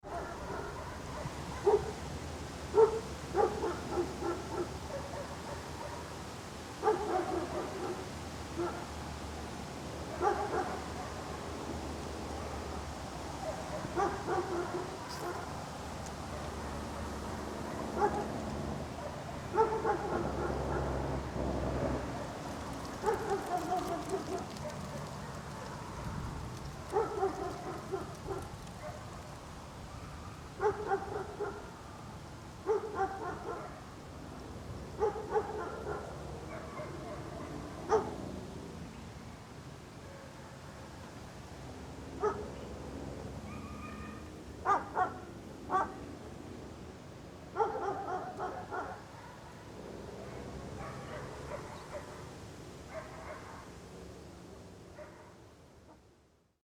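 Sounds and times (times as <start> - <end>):
outdoor ambience: 0.0 - 56.6
dog barking: 0.1 - 2.0, 2.7 - 6.1, 6.8 - 8.9, 10.1 - 11.2, 13.4 - 15.6, 17.6 - 18.3, 19.0 - 21.0, 23.0 - 26.2, 26.9 - 29.2, 30.0 - 31.7, 32.6 - 33.9, 35.0 - 38.2, 42.2 - 42.5, 43.5 - 46.0, 47.6 - 49.6, 50.2 - 52.3, 52.9 - 53.7, 55.0 - 55.4.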